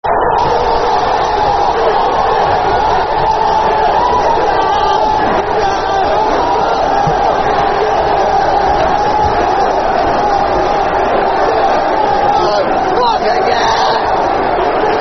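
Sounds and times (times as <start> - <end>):
football crowd chanting: 0.0 - 15.0.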